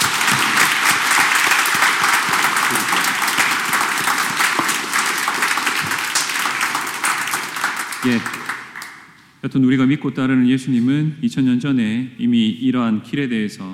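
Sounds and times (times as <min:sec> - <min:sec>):
audience at Mass applauding: 0:00.0 - 0:09.2
speech: 0:08.0 - 0:08.4, 0:09.4 - 0:13.7.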